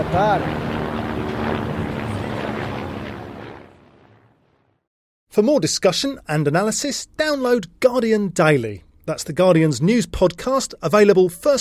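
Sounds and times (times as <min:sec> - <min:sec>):
speech: 0:00.0 - 0:00.7, 0:05.4 - 0:11.6
helicopter droning overhead: 0:00.0 - 0:04.8.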